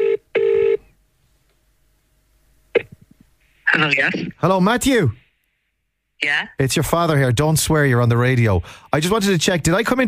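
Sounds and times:
landline telephone double ringing tone heard over the line: 0:00.0 - 0:00.8
speech: 0:03.8 - 0:05.2, 0:06.2 - 0:10.0.

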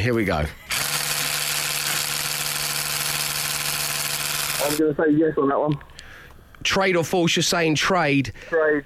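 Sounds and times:
speech: 0:00.0 - 0:00.7, 0:04.6 - 0:05.9, 0:06.6 - 0:08.8
electric toothbrush buzzing: 0:00.7 - 0:04.8.

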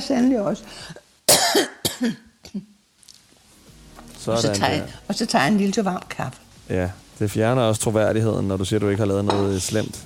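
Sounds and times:
speech: 0:00.0 - 0:02.7, 0:04.2 - 0:10.0
quiet breathing: 0:00.6 - 0:01.2
harsh coughing: 0:01.3 - 0:02.7.

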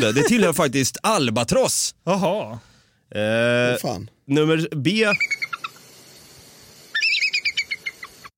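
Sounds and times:
laughter: 0:00.0 - 0:00.6
speech: 0:00.0 - 0:05.4
bald eagle's thin high chittering call: 0:05.0 - 0:08.3.

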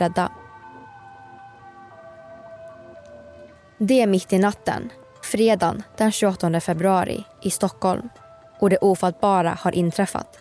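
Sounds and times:
speech: 0:00.0 - 0:00.4, 0:03.8 - 0:10.3
ambulance siren wailing: 0:00.0 - 0:03.8.

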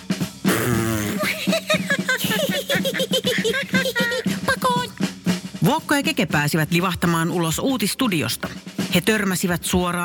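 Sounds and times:
loud buzzy fart: 0:00.5 - 0:01.2
laughter: 0:00.9 - 0:04.9
speech: 0:05.9 - 0:10.0.

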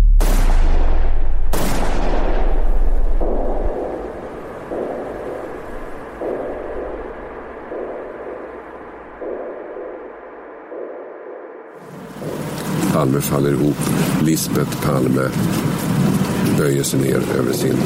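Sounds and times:
gunshots with booming tail: 0:00.1 - 0:13.1
soft rhythmic thuds: 0:01.9 - 0:17.8
speech: 0:13.1 - 0:17.8.

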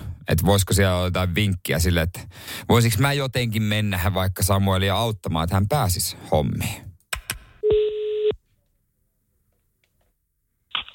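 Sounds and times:
speech: 0:00.3 - 0:06.9
steady electronic telephone tone: 0:07.6 - 0:08.4
telephone clicks while dialing a help line: 0:10.7 - 0:10.9.

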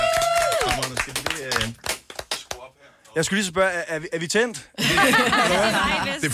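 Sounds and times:
studio audience applause: 0:00.0 - 0:02.4
speech: 0:03.2 - 0:06.3
laughter: 0:04.8 - 0:06.3.

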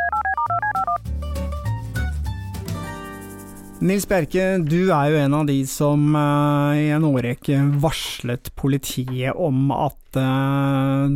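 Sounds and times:
telephone keypad dialing beeps: 0:00.0 - 0:01.0
music: 0:00.0 - 0:05.5
speech: 0:03.8 - 0:11.1.

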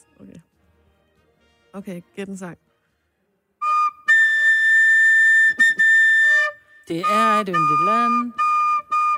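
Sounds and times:
speech: 0:01.7 - 0:02.7, 0:06.9 - 0:08.4
small flute playing a short shrill tune: 0:03.6 - 0:09.1.

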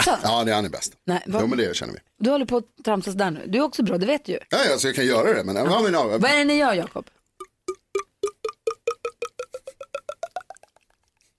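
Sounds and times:
speech: 0:00.0 - 0:07.2
voice imitating wine glugging from a bottle with hollow mouth pops: 0:07.1 - 0:11.3.

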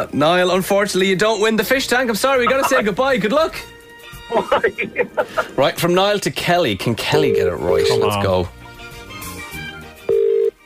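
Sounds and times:
speech: 0:00.0 - 0:08.6
music: 0:00.0 - 0:10.6
laughter: 0:02.4 - 0:03.2, 0:04.0 - 0:05.8
ringback tone of an outgoing phone call: 0:07.2 - 0:08.1, 0:10.1 - 0:10.6.

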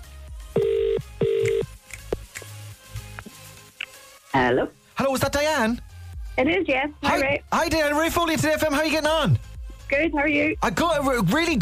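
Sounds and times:
phone line ringing tone: 0:00.6 - 0:01.7
speech: 0:04.4 - 0:11.6.

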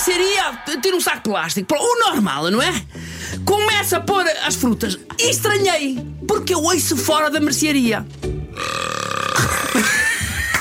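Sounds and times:
speech: 0:00.1 - 0:09.0
loud drawn-out burp in a grocery store: 0:08.5 - 0:10.3.

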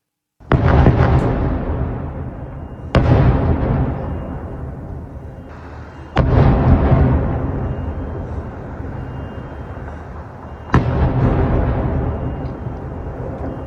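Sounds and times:
heavy explosions from missile strikes in Beirut: 0:00.4 - 0:13.6.

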